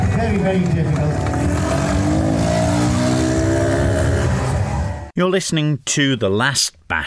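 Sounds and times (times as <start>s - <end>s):
Honda 90 motorcycle engine revving during a stunt show: 0.2s - 5.1s
speech: 0.5s - 1.2s, 5.2s - 7.0s.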